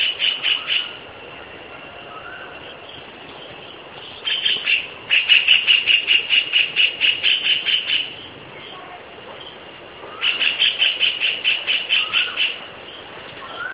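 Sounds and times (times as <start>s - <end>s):
White-throated kingfisher chattering: 0.0s - 1.0s, 4.0s - 8.8s, 10.1s - 12.7s.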